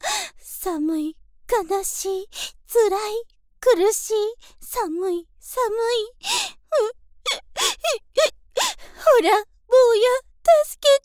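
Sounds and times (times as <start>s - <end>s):
speech: 0.6s - 11.0s
woman sobbing: 6.8s - 9.2s.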